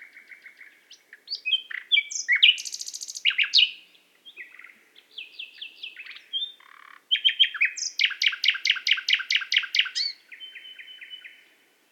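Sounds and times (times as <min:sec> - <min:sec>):
common nightingale Luscinia megarhynchos song: 0:00.0 - 0:11.9.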